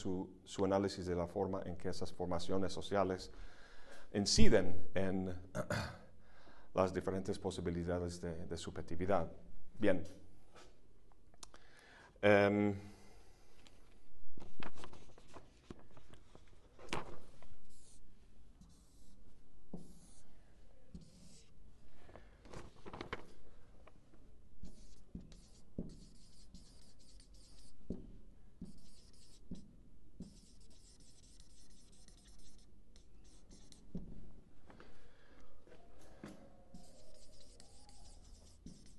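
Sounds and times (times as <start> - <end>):
speech: 0.0 - 6.0, 6.8 - 10.2, 12.2 - 12.9
handwriting during a lecture course: 24.6 - 27.8, 28.6 - 29.6, 30.2 - 34.0, 36.8 - 38.9.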